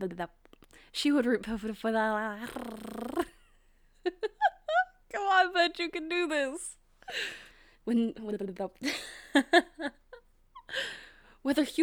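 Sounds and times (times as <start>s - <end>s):
speech: 0.0s - 3.2s, 5.2s - 10.0s, 10.7s - 11.8s
person making whiny whimpering puppy-like vocal sound: 4.2s - 5.0s.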